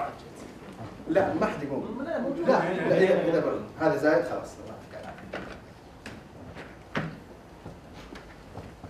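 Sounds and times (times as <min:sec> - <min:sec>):
speech: 0:01.1 - 0:04.9
chair creaks and taps: 0:05.0 - 0:08.8.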